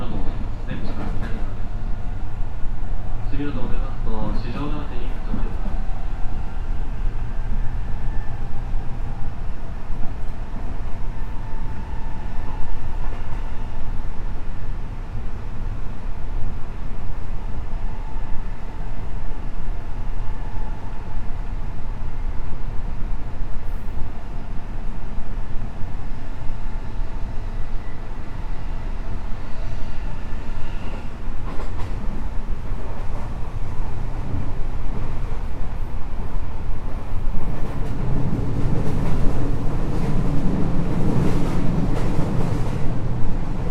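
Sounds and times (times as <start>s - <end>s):
207 series electric train running rumble: 0.0s - 43.6s.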